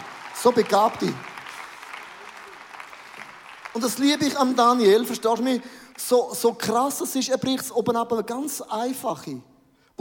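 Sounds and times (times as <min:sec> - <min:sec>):
audience applause: 0:00.0 - 0:06.0
speech: 0:00.4 - 0:01.3, 0:03.8 - 0:10.0.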